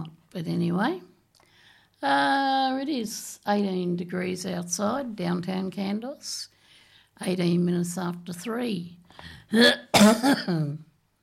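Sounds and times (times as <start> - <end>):
speech: 0.4 - 1.1, 2.0 - 6.5, 7.2 - 10.8
person coughing: 9.6 - 10.8.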